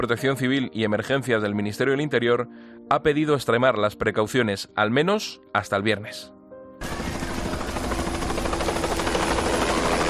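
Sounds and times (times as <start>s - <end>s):
speech: 0.0s - 7.0s
firefighting helicopter battling a wildfire near Valencia de Alcántara, Cáceres: 6.8s - 10.0s.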